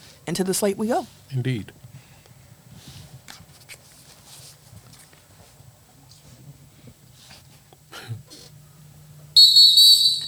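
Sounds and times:
quiet rustling: 0.0s - 8.6s
speech: 0.3s - 1.9s
loud shrill whistle blast: 9.4s - 10.2s.

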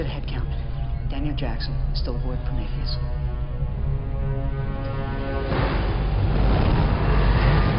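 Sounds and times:
sci-fi spaceship engine humming with deep pulsing tonal drone: 0.0s - 7.7s
speech: 1.2s - 3.2s
loud rushing roar of sci-fi spaceship engine: 4.8s - 7.7s.

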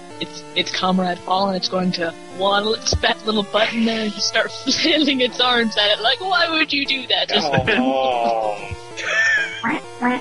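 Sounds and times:
speech: 0.2s - 10.1s
laughter: 3.5s - 5.8s, 7.2s - 9.8s
person imitating duck quacks: 7.3s - 10.1s.

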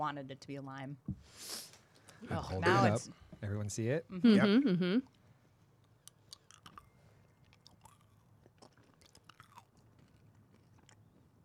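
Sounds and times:
speech: 0.0s - 5.2s
wet chewing with crunchy bites: 5.8s - 11.4s.

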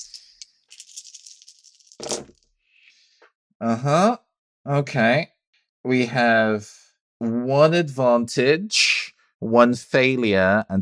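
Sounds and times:
two black dice rattling as they are rolled: 0.0s - 2.4s
speech: 3.6s - 10.8s.

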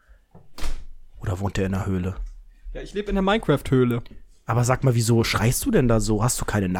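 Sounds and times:
door opening with a rattling scrape, whoosh and thump: 0.3s - 1.2s
speech: 1.3s - 6.7s.

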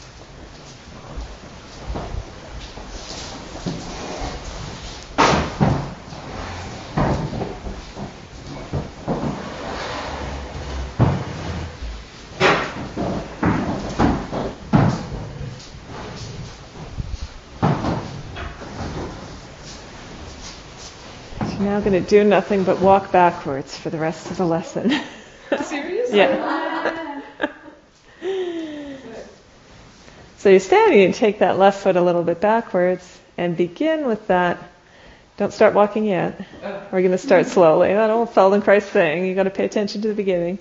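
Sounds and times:
low room rumble: 0.0s - 40.6s
wooden chairs being shifted and set down: 0.4s - 24.5s
speech: 21.8s - 27.0s, 30.4s - 34.7s, 35.4s - 40.6s
laughter: 24.8s - 27.8s.

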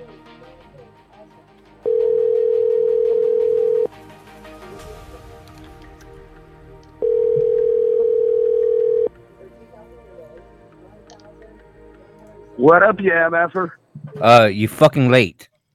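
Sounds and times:
telephone line tone while placing a call: 1.8s - 3.9s, 7.0s - 9.1s
speech: 12.7s - 15.5s.

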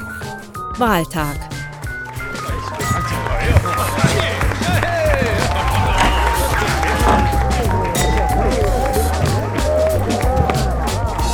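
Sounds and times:
speech: 0.8s - 1.5s
celebrating crowd cheering: 3.0s - 11.2s.

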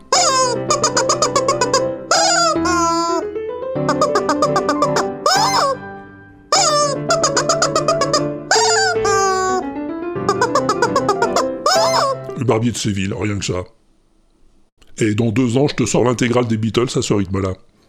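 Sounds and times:
squeaky rubber chicken toy playing a tune: 0.0s - 3.2s, 3.8s - 5.9s, 6.5s - 9.6s, 10.3s - 12.4s
speech: 12.6s - 13.8s, 15.0s - 17.7s.

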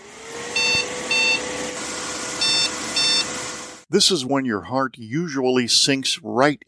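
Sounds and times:
computer motherboard BIOS POST failure beep code: 0.6s - 1.4s, 2.4s - 3.3s
speech: 3.9s - 6.6s.

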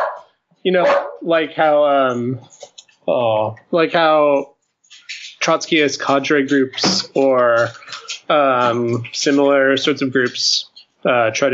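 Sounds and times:
pet dog barking and yipping at home: 0.0s - 1.2s
speech: 0.6s - 11.5s.

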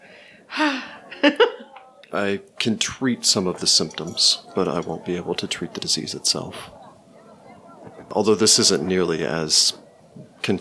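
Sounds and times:
person panting: 0.0s - 1.1s
laughter: 0.5s - 10.6s
speech: 2.1s - 6.8s, 8.1s - 9.8s.

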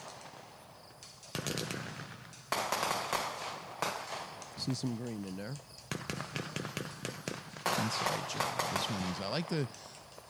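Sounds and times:
fireworks cake firing rapid shots: 1.3s - 4.8s, 5.9s - 9.7s
fizzing crackling tails of fireworks: 4.4s - 10.2s
speech: 4.7s - 5.7s, 7.8s - 9.9s.

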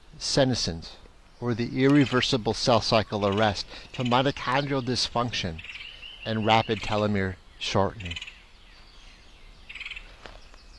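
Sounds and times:
speech: 0.2s - 8.3s
woodpecker chattering call: 1.4s - 8.5s.

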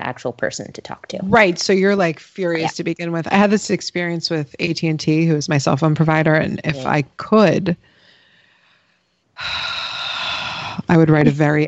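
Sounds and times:
speech: 0.1s - 7.9s, 9.4s - 9.8s, 10.9s - 11.6s
heavy breathing into a microphone: 7.8s - 10.8s.

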